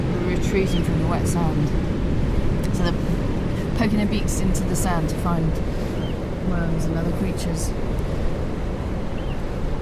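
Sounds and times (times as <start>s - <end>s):
rough Atlantic surf roaring: 0.0s - 9.8s
wind buffeting: 0.0s - 9.8s
speech: 0.5s - 2.0s, 2.8s - 7.9s.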